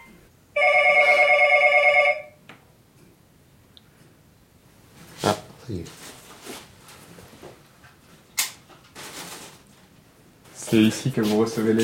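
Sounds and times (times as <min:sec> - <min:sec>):
telephone ringing: 0:00.0 - 0:02.4
speech: 0:05.7 - 0:06.1, 0:10.7 - 0:11.8.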